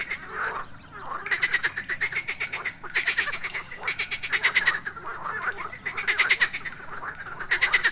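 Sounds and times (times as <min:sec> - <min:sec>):
chorus of frogs croaking: 0:00.0 - 0:07.9.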